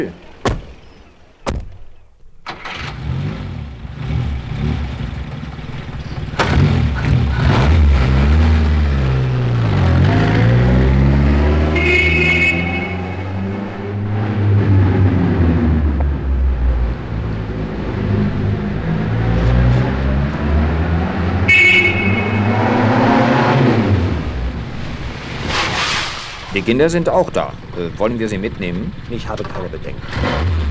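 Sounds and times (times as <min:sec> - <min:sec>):
speech: 0:00.0 - 0:00.2, 0:26.7 - 0:30.6
car engine starting and revving as it pulls away: 0:00.2 - 0:29.4, 0:30.0 - 0:30.7
car door thuds: 0:00.3 - 0:02.5.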